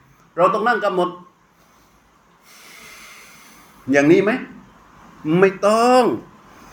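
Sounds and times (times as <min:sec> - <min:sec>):
speech: 0:00.4 - 0:01.3, 0:03.9 - 0:04.5, 0:05.2 - 0:06.3
long breathy exhale through the nose during breath-awareness meditation: 0:01.6 - 0:03.9.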